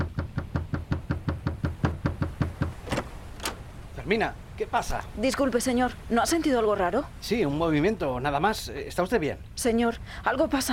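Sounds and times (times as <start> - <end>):
knocking on a wooden cabin door aboard a ship: 0.0 - 3.6
speech: 4.1 - 10.7.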